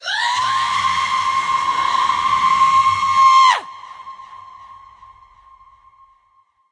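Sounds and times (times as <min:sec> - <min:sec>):
banshee scream: 0:00.0 - 0:04.7.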